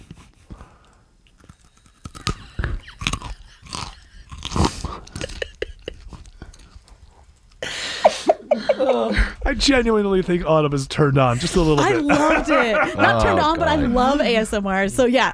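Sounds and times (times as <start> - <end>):
biting and chewing a raw carrot: 1.2 - 7.6
laughter: 2.4 - 6.5, 7.7 - 9.6, 11.2 - 14.4
speech: 8.9 - 15.3.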